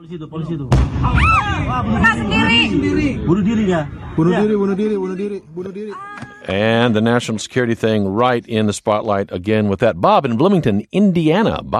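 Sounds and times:
speech: 0:00.0 - 0:11.7
explosions and gunfire in a city: 0:00.7 - 0:04.7
agitated voices talking and shouting: 0:01.0 - 0:02.8.

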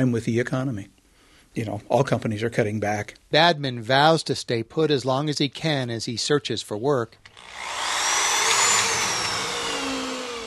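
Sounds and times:
speech: 0:00.0 - 0:07.8
power drill driving screws into deck planks: 0:07.3 - 0:10.4.

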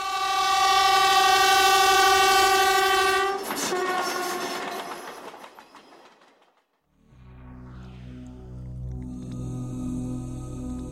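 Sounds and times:
train horn blaring: 0:00.0 - 0:04.8
passing train cars clattering on railroad tracks: 0:02.4 - 0:06.9.

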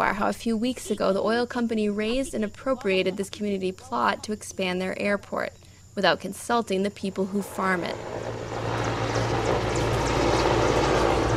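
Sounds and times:
speech: 0:00.0 - 0:08.4
helicopters rising and flying overhead: 0:07.8 - 0:11.3.

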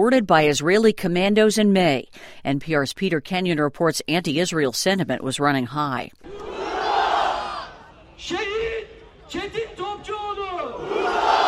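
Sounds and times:
speech: 0:00.0 - 0:06.4, 0:08.2 - 0:08.5
thousands of people in Istanbul, Turkey shouting and chanting in unison: 0:06.2 - 0:11.4.

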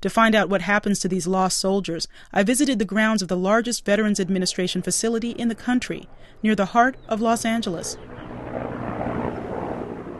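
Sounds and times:
speech: 0:00.0 - 0:08.8
medical helicopter taking off from a veterans' hospital campus: 0:03.8 - 0:10.1.

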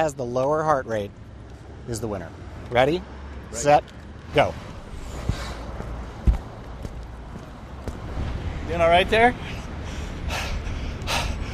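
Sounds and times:
speech: 0:00.0 - 0:01.2, 0:01.8 - 0:04.7, 0:08.7 - 0:09.6
heavy breathy exhalations after walking a mile for a heart-rate test: 0:04.9 - 0:05.8, 0:09.4 - 0:11.5.

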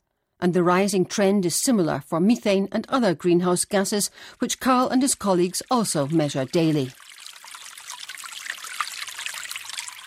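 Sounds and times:
speech: 0:00.4 - 0:07.0
meltwater trickling from melting snow: 0:05.1 - 0:10.0.

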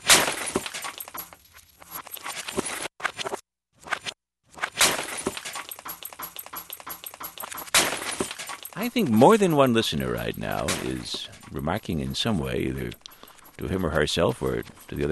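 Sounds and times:
glass breaking and shattering with tinkling debris: 0:00.0 - 0:01.4, 0:04.7 - 0:08.9
speech: 0:08.8 - 0:13.0, 0:13.6 - 0:15.0.

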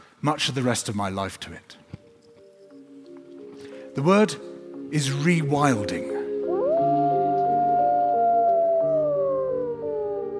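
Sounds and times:
speech: 0:00.2 - 0:01.9, 0:04.0 - 0:06.1
several wolves howling together: 0:06.4 - 0:10.3.

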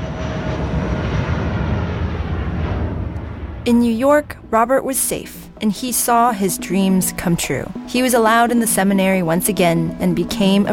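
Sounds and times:
airplane engine droning in flight: 0:00.0 - 0:10.7
speech: 0:03.7 - 0:10.7.

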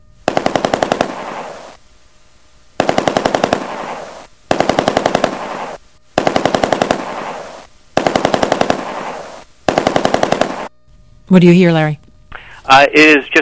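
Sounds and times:
AK-47 assault rifle firing fully automatic bursts: 0:00.3 - 0:01.8, 0:02.8 - 0:10.7
speech: 0:11.3 - 0:12.0, 0:12.7 - 0:13.4.

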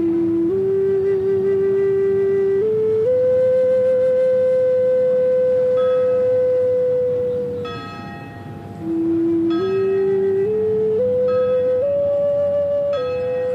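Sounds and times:
resonant hum: 0:00.0 - 0:13.5
prison bells ringing: 0:07.5 - 0:12.0, 0:12.9 - 0:13.5.

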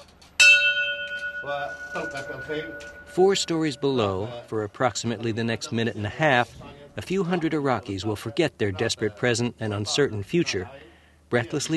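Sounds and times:
racetrack starter's bell ringing: 0:00.4 - 0:04.5
speech: 0:01.4 - 0:11.7.

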